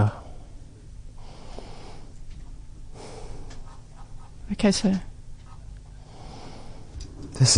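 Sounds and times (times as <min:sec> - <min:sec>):
speech: 0:00.0 - 0:00.2, 0:04.5 - 0:05.1, 0:07.4 - 0:07.5
deep breathing in and out through the nose and mouth: 0:00.0 - 0:04.2, 0:05.9 - 0:07.4.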